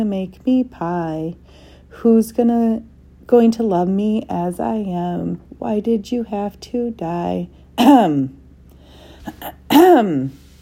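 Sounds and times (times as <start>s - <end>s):
speech: 0.0s - 8.4s, 9.2s - 10.4s
man clearing his throat: 9.3s - 10.2s.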